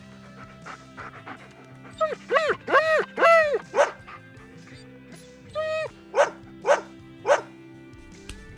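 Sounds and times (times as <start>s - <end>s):
dog barking and yipping: 2.0s - 4.2s, 6.1s - 7.5s.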